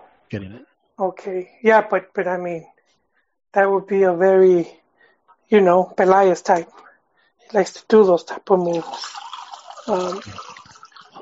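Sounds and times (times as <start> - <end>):
speech: 0.3 - 2.7, 3.5 - 4.8, 5.5 - 6.9, 7.5 - 10.5
water being poured in a short steady stream: 8.6 - 11.1.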